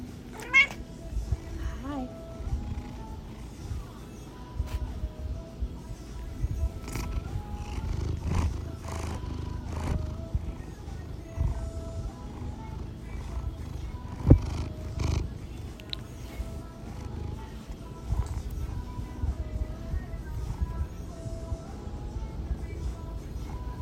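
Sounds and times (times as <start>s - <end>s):
cat purring: 0.0s - 23.8s
faint noise: 0.0s - 23.8s
cat meowing: 0.3s - 0.8s.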